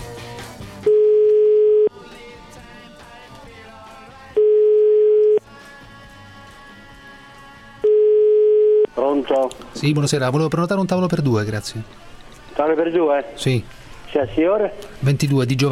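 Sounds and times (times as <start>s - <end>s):
telephone line tone while a number is dialed: 0.9s - 1.9s, 4.4s - 5.4s, 7.9s - 8.9s
speech: 9.4s - 15.7s.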